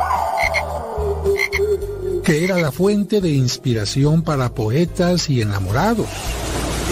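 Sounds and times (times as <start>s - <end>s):
chorus of frogs croaking: 0.3s - 0.7s, 1.3s - 1.7s, 2.3s - 2.7s
speech: 2.3s - 6.4s.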